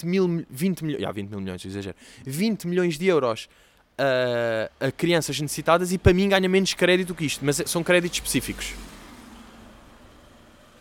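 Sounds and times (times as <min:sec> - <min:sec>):
speech: 0:00.0 - 0:09.0
Seat Ibiza car engine and road rumble passing: 0:05.1 - 0:10.7.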